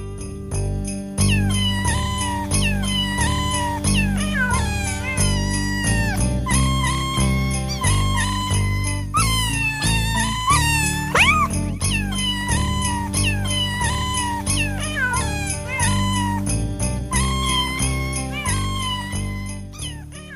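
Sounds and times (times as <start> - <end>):
cat meows pitched and spliced into a cheerful Christmas melody: 0.0 - 20.3
steady bass: 0.0 - 20.3.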